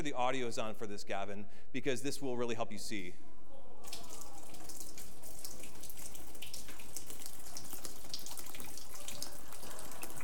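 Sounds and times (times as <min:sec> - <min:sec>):
speech: 0:00.0 - 0:04.0
water dripping from leaking ceiling: 0:03.8 - 0:10.2.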